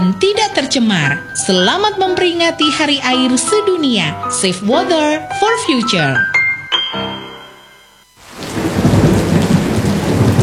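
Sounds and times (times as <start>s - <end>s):
speech: 0.1s - 6.3s
tonal chime: 6.5s - 8.1s
heavy rain pouring: 8.2s - 10.4s.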